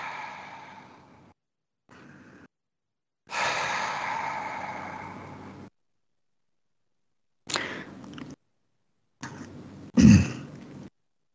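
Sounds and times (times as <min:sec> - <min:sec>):
person breathing in through the nose and out through the mouth: 0:00.0 - 0:02.5, 0:03.3 - 0:05.7, 0:07.5 - 0:08.1.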